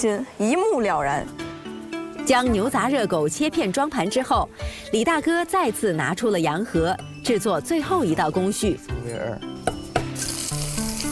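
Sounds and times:
speech: 0.0 - 1.4, 2.3 - 9.7
garlic slices stir-fried over high heat: 10.0 - 11.1.

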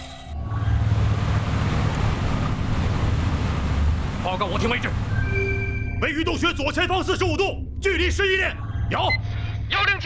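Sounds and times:
submarine engine running at full speed ahead: 0.3 - 9.7
rushing water-like noise: 0.4 - 5.8
speech: 4.3 - 5.1, 6.0 - 9.3.

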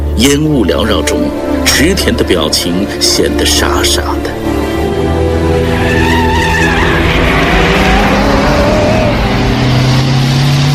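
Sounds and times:
speech: 0.2 - 4.3
motorcycle and military jeep engines roaring: 4.2 - 10.7
tires squealing and skidding: 5.5 - 10.7.

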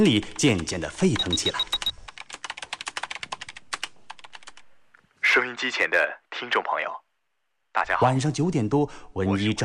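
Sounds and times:
speech: 0.0 - 1.8, 5.6 - 7.0, 7.7 - 9.6
rapid typing on a computer keyboard: 0.0 - 4.7.

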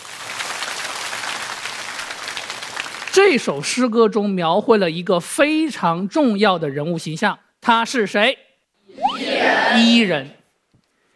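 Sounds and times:
classroom of students clapping: 0.0 - 3.3
speech: 3.1 - 10.4.

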